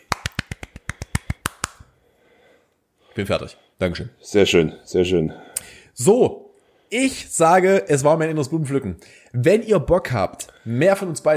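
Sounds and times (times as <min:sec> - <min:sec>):
single person hand clapping: 0:00.0 - 0:01.9
speech: 0:03.2 - 0:11.3.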